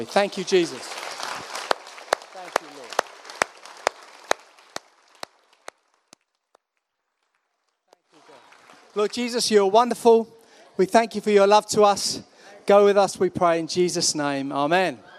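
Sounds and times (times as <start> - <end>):
speech: 0.0 - 1.0, 9.0 - 15.1
loud claps: 0.0 - 9.2
audience applauding: 0.0 - 9.4.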